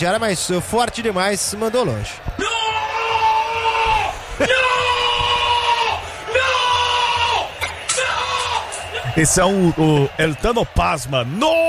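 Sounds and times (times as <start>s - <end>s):
speech: 0.0s - 2.6s, 4.4s - 4.7s, 9.2s - 11.6s
stadium crowd roaring: 0.0s - 11.6s
football fan shouting: 2.3s - 10.4s.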